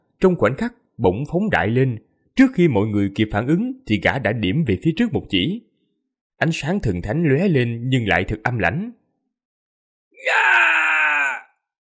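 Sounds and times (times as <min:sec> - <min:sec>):
speech: 0:00.2 - 0:05.7, 0:06.4 - 0:09.0, 0:10.2 - 0:10.8
agonized scream of pain: 0:10.2 - 0:11.6.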